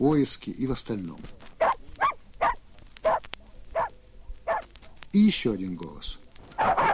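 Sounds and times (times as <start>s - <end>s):
speech: 0.0s - 1.5s, 5.2s - 6.8s
reindeer-herding laika dog barking: 1.6s - 4.7s, 6.6s - 6.9s.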